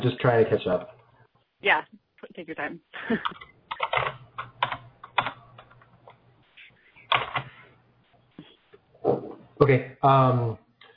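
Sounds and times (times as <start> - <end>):
speech: 0.0 - 1.0, 1.6 - 4.2, 9.0 - 10.6
faint low electrical hum: 0.0 - 10.9
typing on a computer keyboard: 3.2 - 5.9, 7.1 - 7.5.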